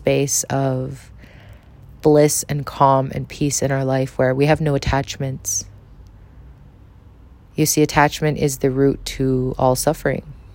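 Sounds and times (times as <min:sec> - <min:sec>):
traffic rumble outside a window: 0:00.0 - 0:10.5
speech: 0:00.1 - 0:01.1, 0:02.0 - 0:05.7, 0:07.6 - 0:10.4.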